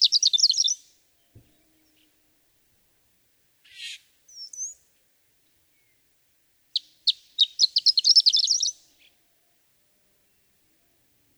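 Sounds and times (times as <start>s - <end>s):
horned lark singing: 0.0s - 0.9s, 3.7s - 4.8s, 6.8s - 9.1s.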